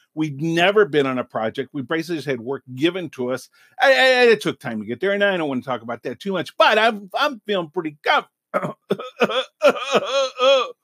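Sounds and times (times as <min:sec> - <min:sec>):
speech: 0:00.2 - 0:10.8
throat clearing to get rid of dust in the throat: 0:08.6 - 0:10.7.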